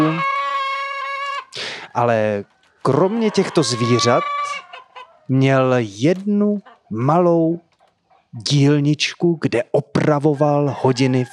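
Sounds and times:
chicken crowing in a village yard: 0.0 - 5.3, 10.4 - 11.3
speech: 2.0 - 7.6, 8.3 - 11.3.

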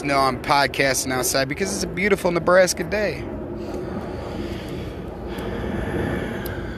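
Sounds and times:
speech: 0.0 - 3.8
airplane flying overhead: 0.0 - 6.7.

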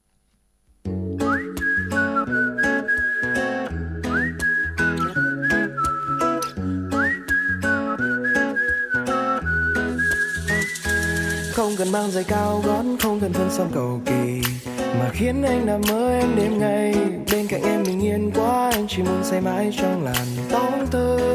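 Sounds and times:
bright whistled melody with rising swoops: 1.1 - 13.9
speech: 12.0 - 21.3.

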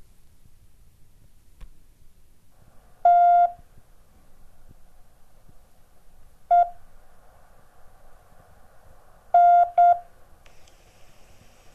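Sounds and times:
faint hiss: 0.0 - 11.7
Morse code telegraph beeps: 3.0 - 3.6, 6.5 - 6.8, 9.4 - 10.0.

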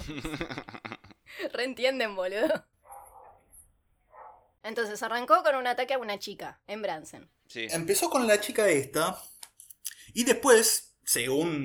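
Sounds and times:
laughter: 0.0 - 1.2
speech: 0.1 - 0.7, 1.6 - 2.7, 4.6 - 9.4, 10.1 - 11.6
faint dogs barking in the neighborhood: 2.8 - 3.5, 4.1 - 4.5.

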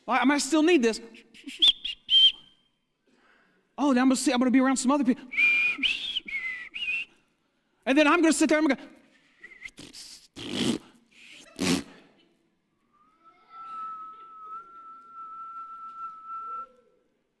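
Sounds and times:
speech: 0.1 - 1.8, 3.8 - 5.9, 7.9 - 9.0
person whistling one long steady clear note: 1.2 - 2.8, 5.3 - 7.2, 9.4 - 10.2, 12.9 - 17.0.

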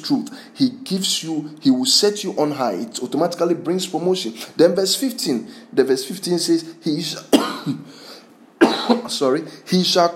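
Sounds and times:
speech: 0.0 - 8.0, 8.9 - 10.1
phlegmy coughing: 7.3 - 7.9, 8.6 - 9.2.

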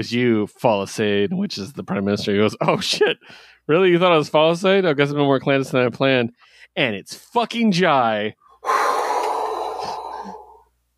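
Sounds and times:
speech: 0.0 - 8.8
sharp surprised gasp: 8.6 - 10.7.

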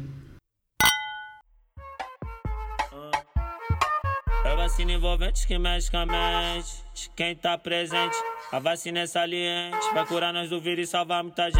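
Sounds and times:
wine glasses clinking in a toast: 0.8 - 1.4
music: 1.7 - 11.5
speech: 4.5 - 11.5.

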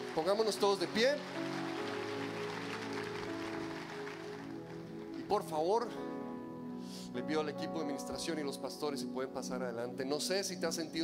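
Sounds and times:
audience applause after a prayer: 0.0 - 5.1
speech: 0.2 - 1.6, 5.3 - 6.2, 7.1 - 11.0.

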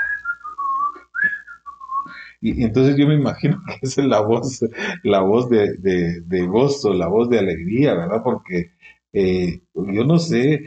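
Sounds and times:
person whistling a cheerful tune: 0.0 - 2.3
speech: 2.4 - 10.6.

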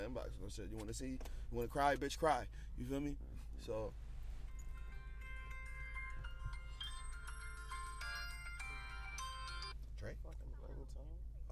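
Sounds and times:
speech: 0.0 - 4.1, 10.0 - 11.5
low rumble: 0.0 - 11.5
melodic phone ringtone of bright electronic notes: 4.6 - 9.8.

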